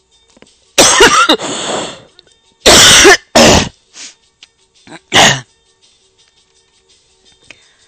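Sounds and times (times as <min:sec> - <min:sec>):
person coughing harshly: 0:00.8 - 0:01.6, 0:02.7 - 0:03.8, 0:05.0 - 0:05.5.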